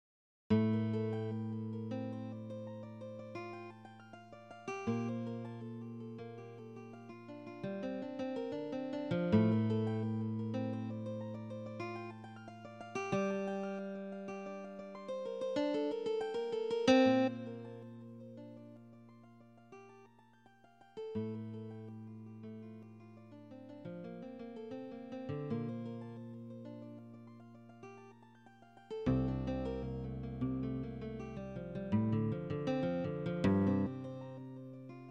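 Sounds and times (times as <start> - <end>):
guitar playing divisions: 0.6 - 18.8, 21.2 - 27.4, 29.1 - 35.1.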